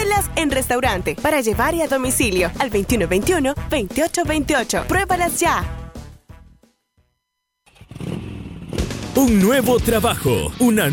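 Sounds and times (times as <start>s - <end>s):
speech: 0.2s - 5.8s, 9.2s - 10.9s
150cc motorcycle engine revving: 7.6s - 9.3s.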